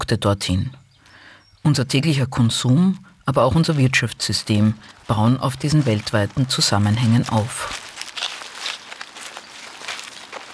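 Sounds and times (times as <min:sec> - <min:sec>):
speech: 0:00.0 - 0:00.8, 0:01.6 - 0:07.8
footsteps crunching across rough ground in a field: 0:02.0 - 0:10.5.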